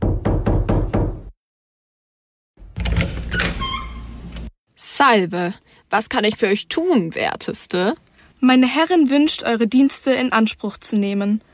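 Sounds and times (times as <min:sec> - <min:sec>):
sharp knocks on a wooden door: 0:00.0 - 0:01.3
rattle and scrape of a door being opened: 0:02.6 - 0:04.5
speech: 0:05.0 - 0:11.5.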